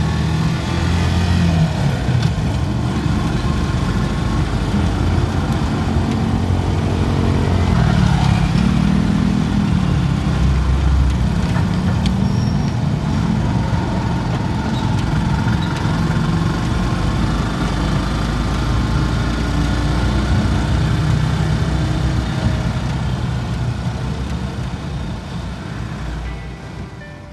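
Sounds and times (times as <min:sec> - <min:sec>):
busy street traffic with many motorcycles: 0:00.0 - 0:27.3.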